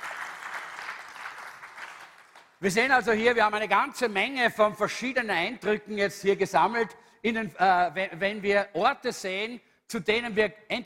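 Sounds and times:
audience applause for assistants: 0.0s - 2.6s
speech: 2.6s - 10.8s.

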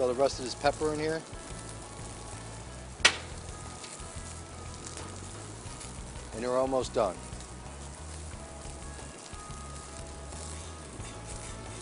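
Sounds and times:
speech: 0.0s - 1.4s, 6.4s - 7.3s
eggs frying in olive oil in a pan: 0.0s - 11.8s
sharp tick: 3.0s - 3.4s.

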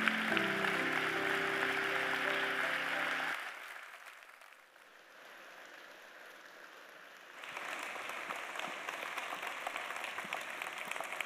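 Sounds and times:
held organ-like chord: 0.0s - 3.4s
audience applauding: 0.0s - 11.2s.

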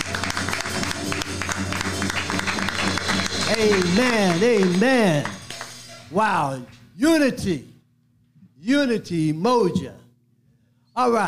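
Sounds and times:
crowd applauding in praise: 0.0s - 6.1s
speech: 3.5s - 5.4s, 6.1s - 7.7s, 8.6s - 10.0s, 11.0s - 11.2s.

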